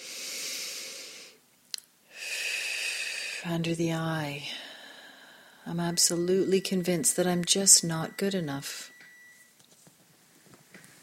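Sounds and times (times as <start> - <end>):
deep breath: 0.0 - 1.4, 2.1 - 3.5, 4.4 - 5.7
speech: 3.4 - 4.6, 5.6 - 8.9.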